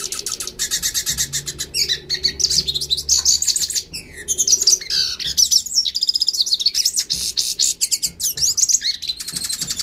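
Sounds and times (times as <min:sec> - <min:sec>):
yellow-faced siskin singing in Northeast Brazil: 0:00.0 - 0:09.8.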